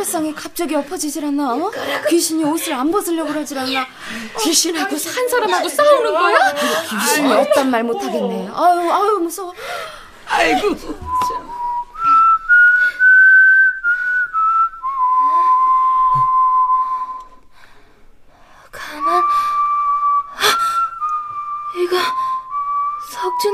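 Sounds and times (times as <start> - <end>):
speech: 0.0 - 11.4
laughter: 1.8 - 9.1, 10.3 - 11.7
person whistling a slow wavering tune: 11.0 - 17.6, 18.8 - 23.5.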